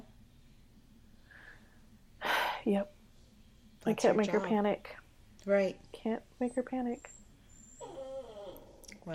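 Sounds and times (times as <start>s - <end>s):
speech: 2.6s - 3.0s, 3.8s - 7.2s
puppy whimpering in high-pitched whining bursts: 7.6s - 8.9s.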